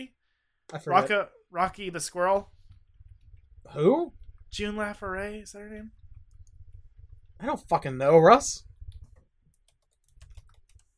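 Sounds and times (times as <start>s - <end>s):
speech: 0.0s - 2.6s, 3.6s - 6.0s, 7.4s - 8.7s
quiet typing on a computer keyboard: 9.5s - 10.9s.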